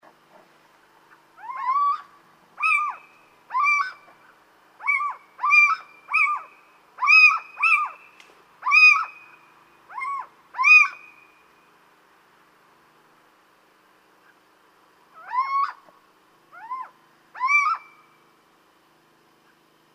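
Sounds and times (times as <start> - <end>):
little owl calling: 1.1 - 11.4, 15.1 - 15.9, 16.5 - 18.2.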